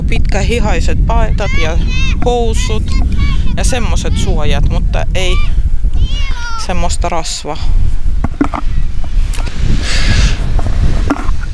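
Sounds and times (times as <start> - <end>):
wind buffeting the microphone at a beach: 0.0 - 11.5
speech: 0.3 - 8.0
faint knocks: 8.2 - 9.2.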